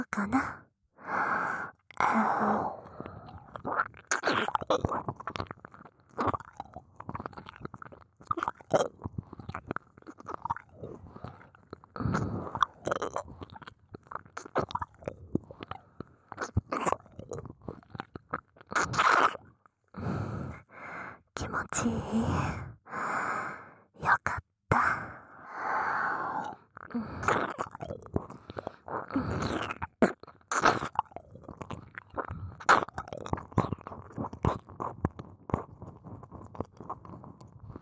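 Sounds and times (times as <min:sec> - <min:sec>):
breaths and sighs: 0:00.4 - 0:03.6, 0:10.9 - 0:12.7, 0:19.9 - 0:27.5, 0:28.2 - 0:29.8
wet ear-licking mouth sounds: 0:03.2 - 0:19.5, 0:26.4 - 0:37.8.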